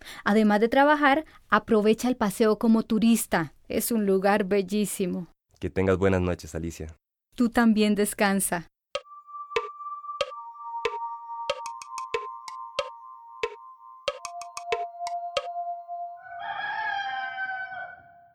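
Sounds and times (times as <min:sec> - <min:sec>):
speech: 0:00.2 - 0:08.7
steady tone: 0:09.0 - 0:16.3
many roosters crowing at once: 0:16.2 - 0:18.3.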